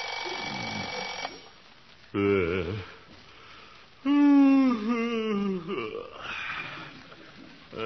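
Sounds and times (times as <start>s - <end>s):
bell-like alarm clock ringing: 0.0s - 1.5s
man groaning: 2.2s - 3.0s, 4.0s - 6.6s.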